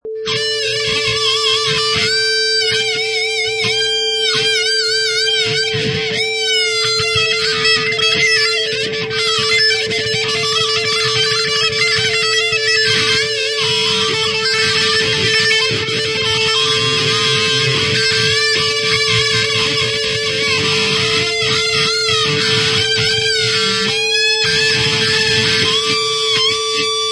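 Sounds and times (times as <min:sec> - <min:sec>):
distorted guitar solo loop in C minor: 0:00.0 - 0:27.1.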